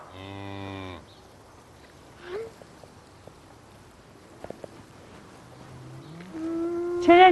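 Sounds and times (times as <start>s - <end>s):
agitated mother cow bellowing in a cattle pen at dusk: 0.1s - 1.1s, 5.7s - 7.1s.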